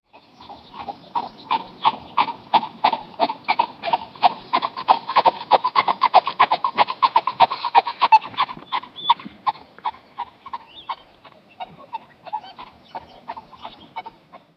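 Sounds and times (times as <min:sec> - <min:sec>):
horse making dog noises, barking: 0:00.4 - 0:14.4.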